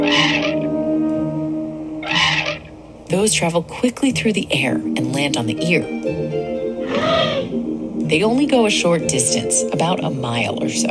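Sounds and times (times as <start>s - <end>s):
elephant high-frequency call: 0.0s - 0.8s, 2.0s - 2.8s, 6.8s - 7.6s
speech: 3.2s - 6.4s, 8.1s - 10.8s.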